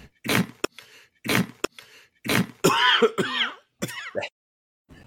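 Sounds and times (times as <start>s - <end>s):
man wheezing with croaky throat sounds: 0.0s - 2.7s
man coughing: 2.3s - 4.3s.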